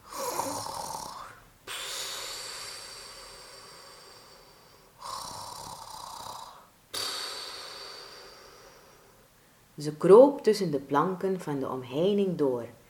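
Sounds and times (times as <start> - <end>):
dogs snoring softly with raspy breaths: 5.0 - 6.7
speech: 9.8 - 12.8.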